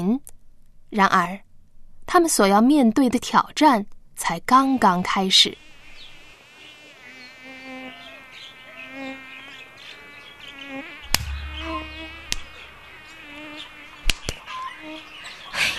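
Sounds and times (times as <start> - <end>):
speech: 0.0 - 1.4, 2.1 - 5.6
mosquitoes whining at night in Yongping Yunnan China: 4.7 - 15.4
low rumble: 11.1 - 13.0
sharp knocks: 11.1 - 13.2.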